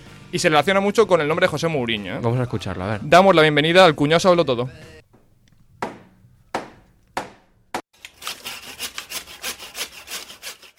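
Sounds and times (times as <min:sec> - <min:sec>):
speech: 0:00.3 - 0:05.0
sharp struck knocks: 0:05.1 - 0:07.8
saw cutting wood with rasping back-and-forth strokes: 0:05.1 - 0:10.7.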